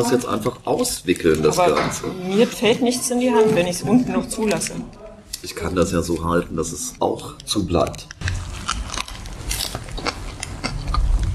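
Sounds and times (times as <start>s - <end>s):
speech: 0.0s - 8.4s
biting into and chewing fresh wholegrain bread: 7.4s - 11.3s.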